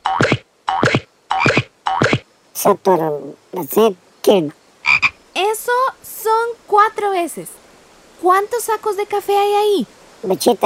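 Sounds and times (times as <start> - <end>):
frog croaking in loud ribbits: 0.0 - 2.2, 4.8 - 5.2
speech: 2.6 - 4.6, 5.6 - 7.6, 8.2 - 10.6.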